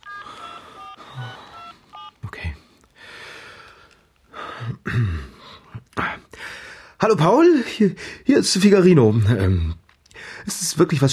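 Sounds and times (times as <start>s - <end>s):
mobile phone keypad tones while dialing a call: 0.0s - 2.3s
speech: 7.0s - 9.8s, 10.4s - 11.1s.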